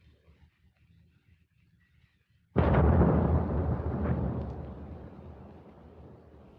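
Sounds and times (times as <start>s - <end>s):
V-1 flying bomb explosion hitting the ground: 2.6s - 6.5s.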